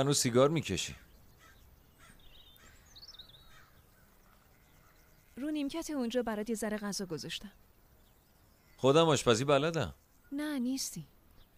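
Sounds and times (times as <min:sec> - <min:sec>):
speech: 0:00.0 - 0:01.1, 0:05.4 - 0:07.7, 0:08.8 - 0:11.1
crows cawing: 0:00.9 - 0:05.6.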